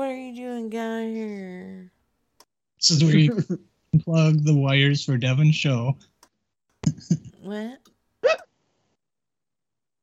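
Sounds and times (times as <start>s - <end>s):
speech: 2.8s - 6.1s, 7.0s - 7.9s
hiccup: 8.2s - 8.5s.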